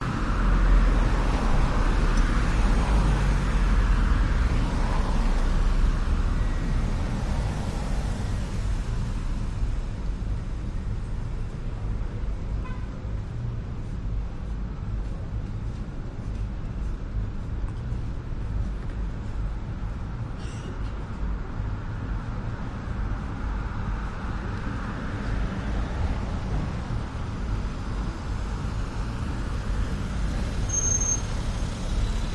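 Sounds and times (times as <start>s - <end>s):
bus: 0.0s - 32.3s
cars: 0.0s - 32.3s
night traffic hissing and roaring in Vancouver: 0.0s - 32.3s.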